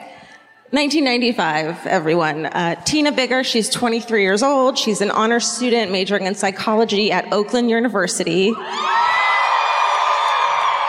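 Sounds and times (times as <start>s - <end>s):
speech: 0.7s - 9.1s
live crowd screaming and cheering with high-pitched whoops and yells: 8.5s - 10.8s.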